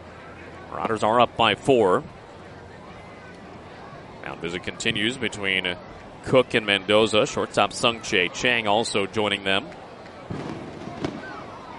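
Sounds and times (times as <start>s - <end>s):
speech: 0.7s - 2.2s, 4.3s - 10.5s
fireworks bangs around a neighbourhood at night: 10.3s - 11.6s.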